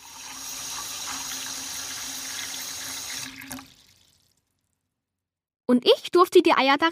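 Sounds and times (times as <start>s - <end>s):
water poured into glasses for dyeing Easter eggs: 0.0s - 4.6s
speech: 5.7s - 6.8s.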